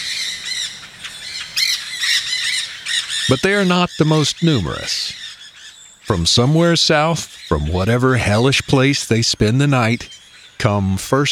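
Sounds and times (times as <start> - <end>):
green parakeets shrieking and squawking: 0.0 - 9.0
speech: 3.3 - 5.2, 6.1 - 11.2.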